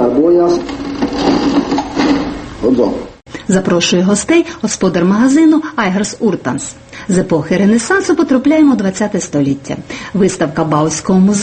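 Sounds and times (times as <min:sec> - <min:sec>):
old mechanical cash register clattering in a colonial goods shop: 0:00.6 - 0:02.4
speech: 0:02.8 - 0:11.4.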